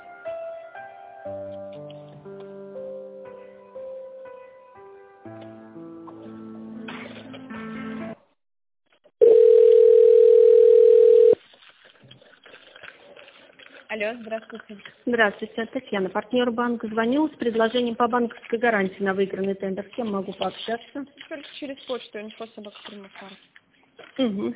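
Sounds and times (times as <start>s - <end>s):
synthesized telephone ringback tune: 9.2s - 11.4s
speech: 14.0s - 23.5s, 24.2s - 24.5s.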